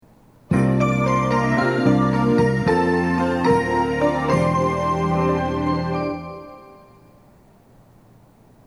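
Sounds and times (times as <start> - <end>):
train departure signal from Panasonic ceiling speaker at Nishi-Kasai: 0.5 - 7.3.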